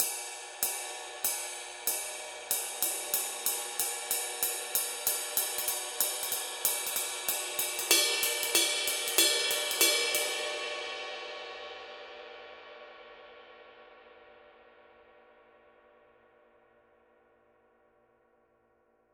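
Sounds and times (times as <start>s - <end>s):
21 inch dark dry ride cymbal pattern: 0.0s - 15.5s.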